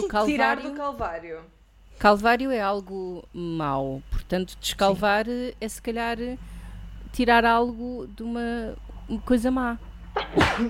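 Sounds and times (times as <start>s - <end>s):
speech: 0.1s - 6.5s, 7.1s - 10.6s
person sneezing: 10.2s - 10.6s.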